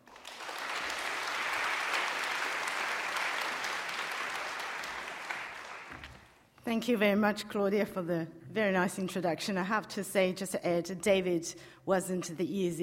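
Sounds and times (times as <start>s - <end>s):
audience applause welcoming a speaker: 0.0s - 6.4s
speech: 6.7s - 12.8s.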